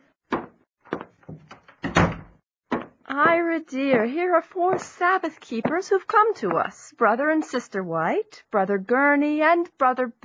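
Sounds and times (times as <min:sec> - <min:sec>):
back door closing thud: 0:01.8 - 0:02.4
speech: 0:03.2 - 0:10.2.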